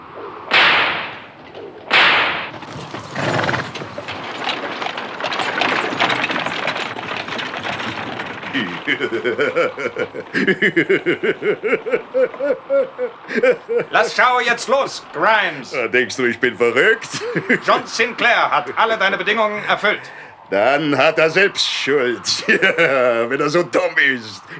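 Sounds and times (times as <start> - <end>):
horse-drawn coach rattling rumbling ride: 0.0 - 24.5
whip cracks driving horses: 0.5 - 2.6
rhythmic cackling laughter: 7.6 - 18.5, 22.1 - 24.5
speech: 8.6 - 24.5.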